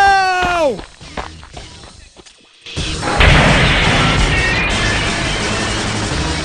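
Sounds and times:
person shouting: 0:00.0 - 0:00.8
loud crashing rush of liquid: 0:03.0 - 0:06.3.

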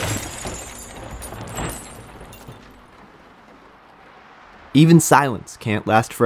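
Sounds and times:
glass shattering and debris spilling: 0:00.0 - 0:02.9
car crashing: 0:00.0 - 0:05.4
speech: 0:04.7 - 0:06.2.

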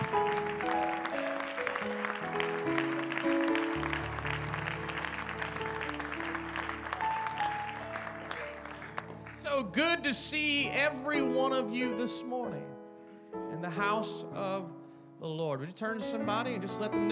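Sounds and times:
audience clapping in praise: 0:00.0 - 0:10.6
held organ or keyboard chords: 0:00.0 - 0:15.0
speech: 0:09.7 - 0:12.7, 0:13.6 - 0:17.0.

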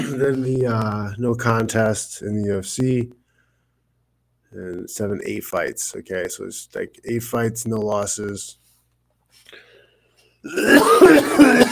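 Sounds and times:
speech: 0:00.0 - 0:03.2, 0:04.5 - 0:08.6, 0:10.4 - 0:11.6
rough cough: 0:10.5 - 0:11.6
throat clearing: 0:10.5 - 0:11.6.

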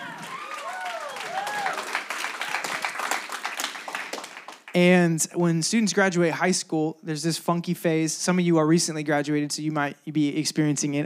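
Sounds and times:
whoops and excited cheering voices: 0:00.0 - 0:02.8
crowd applause for a church youth ministry: 0:00.0 - 0:04.8
speech: 0:04.8 - 0:11.0.

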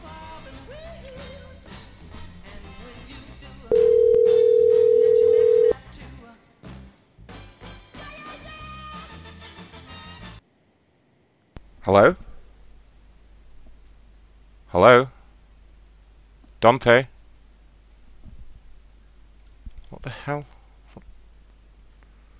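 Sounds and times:
continuous music: 0:00.0 - 0:10.4
telephone ringing tone while a cell phone is called: 0:03.7 - 0:05.8
speech: 0:11.9 - 0:12.2, 0:16.6 - 0:17.1, 0:20.3 - 0:21.1.

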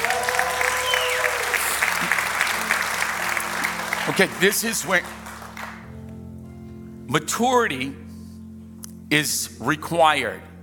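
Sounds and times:
crowd cheering and shouting in a big room: 0:00.0 - 0:01.8
large crowd applauding in a big room: 0:00.0 - 0:06.0
speech: 0:04.1 - 0:05.2, 0:07.1 - 0:08.0, 0:09.1 - 0:10.5.

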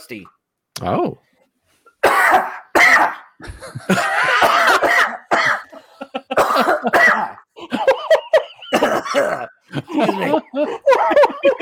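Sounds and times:
speech: 0:00.0 - 0:01.3, 0:03.4 - 0:04.2, 0:09.2 - 0:11.6
choking coughs from a bone stuck in the throat: 0:02.0 - 0:09.6
laughter: 0:03.4 - 0:04.8, 0:05.6 - 0:11.6.

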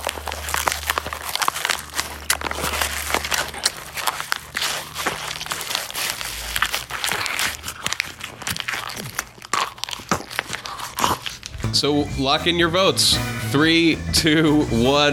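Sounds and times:
chewing on a paper origami swan: 0:00.0 - 0:11.6
speech: 0:11.8 - 0:15.1.

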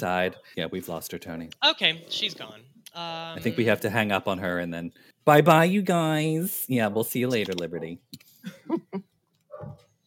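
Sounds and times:
speech: 0:00.0 - 0:09.8
dogs barking: 0:00.2 - 0:00.5.

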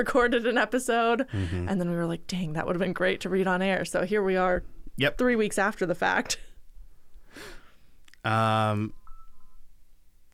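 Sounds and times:
speech: 0:00.0 - 0:06.5, 0:08.2 - 0:09.0
soft breath: 0:06.9 - 0:08.0
phone notification buzzy electronic tone: 0:08.9 - 0:09.6.

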